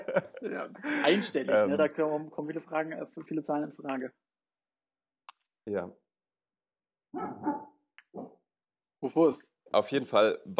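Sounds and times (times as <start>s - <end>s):
laughter: 0.0s - 1.6s
speech: 0.2s - 4.3s, 5.6s - 6.0s, 7.1s - 8.4s, 9.0s - 10.5s
dog barking: 7.2s - 8.3s.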